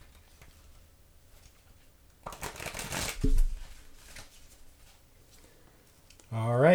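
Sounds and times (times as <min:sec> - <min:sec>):
deck of transparent playing cards being riffle-shuffled: 0:00.1 - 0:05.4.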